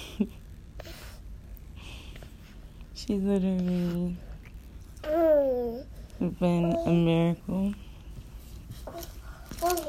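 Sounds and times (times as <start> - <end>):
low hum: 0.0 - 9.8
speech: 0.2 - 0.4, 3.0 - 4.3, 5.0 - 7.8
soft breathing from a small child: 0.8 - 2.7, 9.0 - 9.6.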